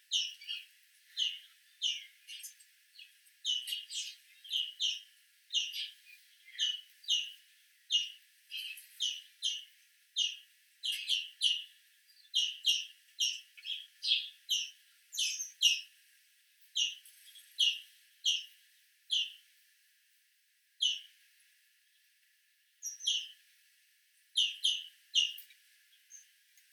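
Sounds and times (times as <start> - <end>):
European greenfinch Chloris chloris calls: 0.1 - 15.9, 16.8 - 18.5, 19.1 - 19.4, 20.8 - 21.1, 22.8 - 23.4, 24.4 - 26.3.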